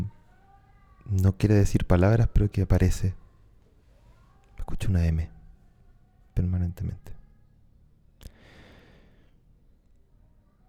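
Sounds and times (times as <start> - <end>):
speech: 1.1 - 3.2, 4.7 - 5.4, 6.4 - 7.2
soft exhalation: 8.2 - 9.4.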